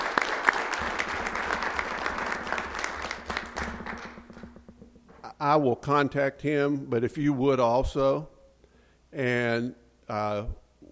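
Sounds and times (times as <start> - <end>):
room full of people applauding: 0.0 - 4.6
sharp individual claps: 0.0 - 5.2
speech: 5.4 - 8.3, 9.2 - 10.6.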